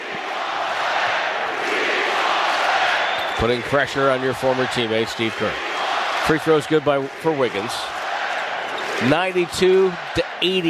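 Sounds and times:
large arena crowd chanting at a basketball game: 0.0 - 3.4, 5.5 - 6.4, 7.1 - 10.6
speech: 3.4 - 8.0, 9.0 - 10.6.

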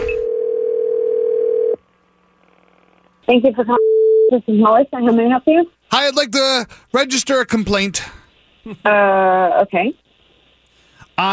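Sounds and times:
telephone ringing tone of a call to a grocery store: 0.2 - 1.8
speech: 3.3 - 10.0.

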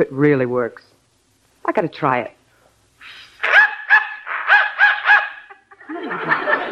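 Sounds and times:
speech: 0.0 - 1.0, 1.6 - 2.4
dog whistle: 3.0 - 5.5
dog barking in response to a dog whistle: 3.4 - 5.5
laughter: 4.3 - 6.7.

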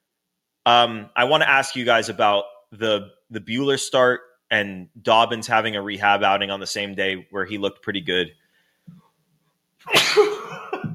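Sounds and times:
speech: 0.7 - 9.0, 9.8 - 10.7
person sneezing: 9.8 - 10.9.

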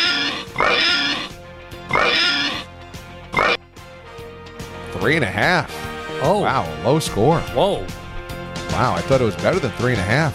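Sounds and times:
pig oinking and squealing: 0.0 - 2.7, 3.3 - 3.6
speech: 5.0 - 8.0, 8.7 - 10.3.

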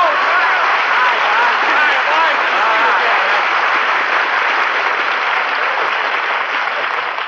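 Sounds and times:
studio audience applauding: 0.0 - 7.2.

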